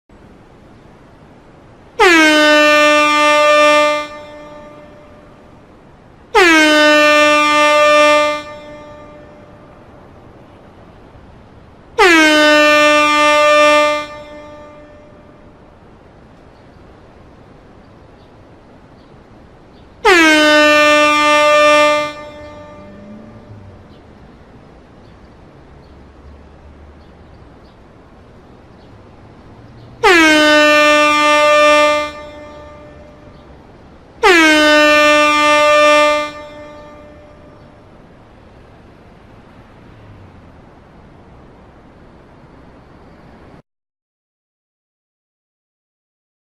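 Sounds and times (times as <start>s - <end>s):
air horn: 2.0s - 5.3s, 6.3s - 9.6s, 12.0s - 15.4s, 20.0s - 23.7s, 30.0s - 33.3s, 34.2s - 37.7s.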